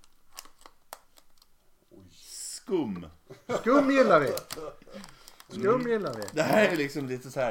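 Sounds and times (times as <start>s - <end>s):
packaging of an Easter egg crinkling and tearing: 0.0s - 1.6s, 4.2s - 7.4s
speech: 2.7s - 7.4s
laughter: 3.3s - 5.1s, 6.2s - 7.1s.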